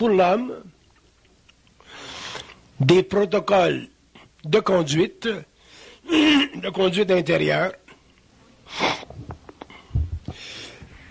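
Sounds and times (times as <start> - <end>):
speech: 0.0 - 0.7, 2.8 - 5.5, 6.1 - 7.8, 8.7 - 9.0
person coughing: 6.1 - 6.6.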